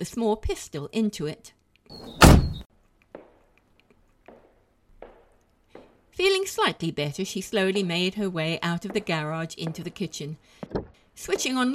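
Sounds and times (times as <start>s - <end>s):
speech: 0.0s - 2.6s, 6.2s - 11.7s
car door in a garage opening and shutting: 2.2s - 2.6s.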